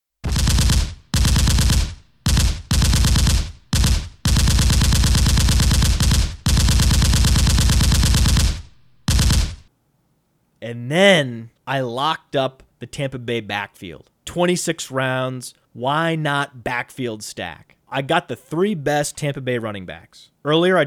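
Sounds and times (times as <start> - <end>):
machine gun gunfire sound effect: 0.2 - 9.7
speech: 10.7 - 20.8.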